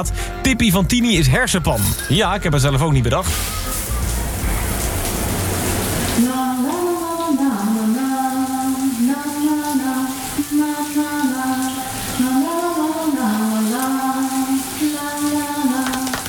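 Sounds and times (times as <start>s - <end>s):
speech: 0.0s - 3.7s
shower water running: 3.2s - 16.2s
woman singing a wordless melody: 6.2s - 16.2s.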